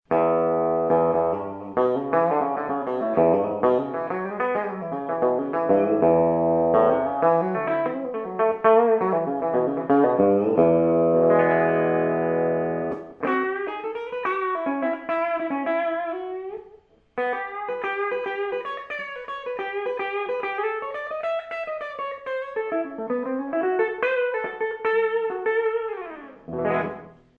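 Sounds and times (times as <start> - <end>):
electric guitar with bridge pickup: 0.1 - 27.3.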